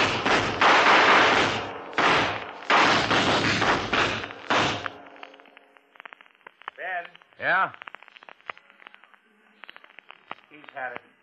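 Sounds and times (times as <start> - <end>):
explosion as a cornered gunman is blown up: 0.0 - 5.1
speech: 7.4 - 7.8, 10.6 - 11.1.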